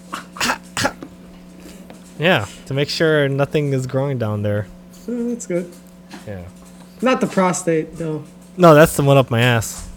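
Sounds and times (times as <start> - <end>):
short sharp coughs: 0.1 - 1.1
speech: 2.2 - 9.9.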